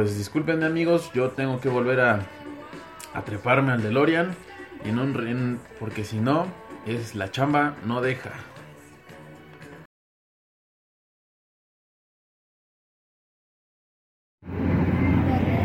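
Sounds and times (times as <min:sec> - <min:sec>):
speech: 0:00.0 - 0:02.4, 0:03.1 - 0:08.5
power generator engine drone: 0:14.4 - 0:15.6.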